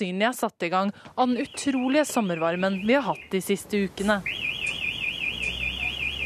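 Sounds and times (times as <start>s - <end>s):
speech: 0.0s - 4.6s
fire station callout alarm with warbling electronic tone: 1.4s - 3.5s, 4.1s - 6.2s.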